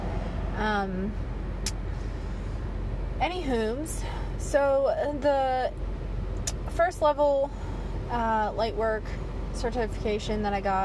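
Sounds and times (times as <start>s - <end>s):
road rumble inside a moving car: 0.0s - 10.8s
traffic noise: 0.0s - 10.8s
speech: 0.6s - 1.3s, 3.2s - 5.9s, 6.7s - 10.8s.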